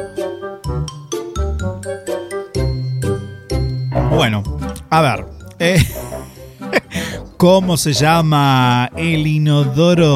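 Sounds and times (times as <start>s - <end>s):
bright tinkling instrumental music with chime-like tones over bass pulse: 0.0s - 7.4s
speech: 4.2s - 6.0s, 7.4s - 10.1s
laughter: 5.7s - 7.0s.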